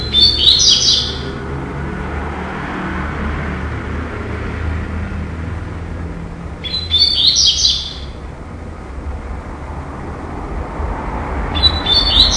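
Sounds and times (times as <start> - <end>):
double-collared seedeater singing: 0.0 - 1.5, 6.6 - 8.3, 11.5 - 12.3
steady traffic rumble: 0.0 - 12.3.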